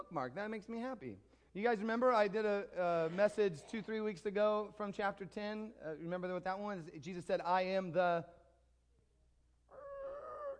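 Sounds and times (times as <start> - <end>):
speech: 0.0 - 8.4
voice imitating a creaking door: 9.7 - 10.5.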